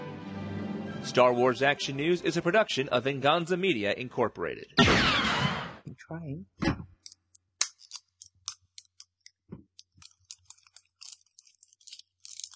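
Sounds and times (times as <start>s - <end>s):
speech: 1.0s - 4.8s, 6.1s - 6.6s
plastic candy packaging being tugged and fumbled open: 7.8s - 12.5s.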